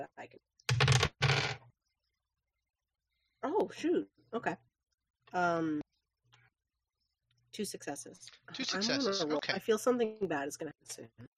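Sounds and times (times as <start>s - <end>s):
speech: 0.0s - 0.5s, 3.6s - 4.7s, 5.3s - 5.9s, 7.6s - 11.3s
Hunger dice rolling on a table: 0.7s - 1.7s.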